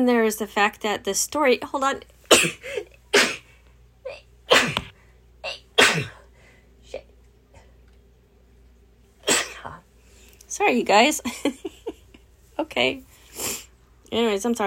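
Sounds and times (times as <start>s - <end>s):
speech: 0.0s - 2.9s, 10.6s - 11.8s, 12.6s - 13.1s, 14.1s - 14.6s
person sneezing: 2.3s - 3.5s, 4.1s - 6.3s, 9.2s - 9.8s.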